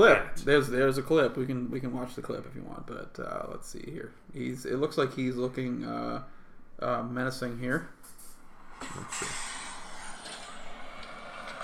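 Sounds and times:
speech: 0.0s - 8.0s, 8.8s - 9.5s
bus air brakes hissing: 8.1s - 11.6s.

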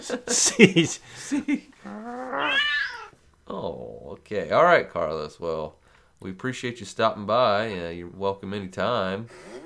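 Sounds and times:
speech: 0.0s - 2.8s, 3.5s - 9.6s
cat growling in displeasure: 1.8s - 3.2s.

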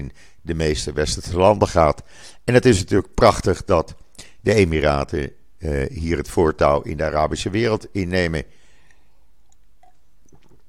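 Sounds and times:
speech: 0.0s - 8.6s
person sipping water with wet mouth clicks and swallow: 8.7s - 10.6s.

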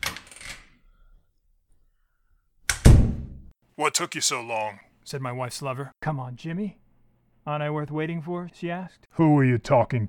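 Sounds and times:
door knock and thump as it swings: 2.8s - 3.5s
speech: 3.8s - 6.8s, 7.4s - 10.0s.

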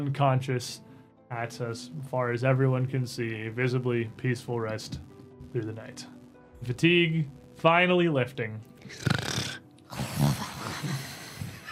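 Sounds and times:
speech: 0.0s - 9.2s
rasping snoring: 8.8s - 11.7s.

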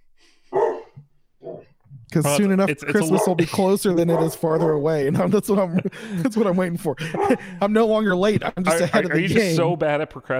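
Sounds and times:
dog barking: 0.5s - 1.7s, 4.1s - 4.8s
laughter: 2.1s - 9.8s
speech: 2.1s - 10.3s.

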